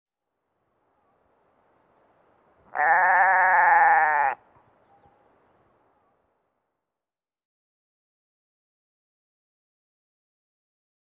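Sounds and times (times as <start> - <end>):
goats baaing: 2.8 - 4.4.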